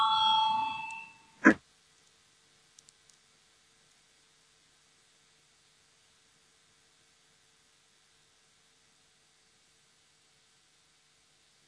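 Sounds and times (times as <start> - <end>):
electric bell ringing in a parliamentary session to call a vote: 0.0 - 1.4.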